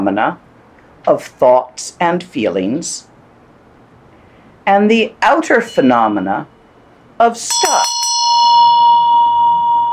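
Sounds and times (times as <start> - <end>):
speech: 0.0 - 0.4, 1.0 - 3.1, 4.7 - 6.6, 7.2 - 7.9
bell ringing with sustained pure tone: 7.5 - 9.9.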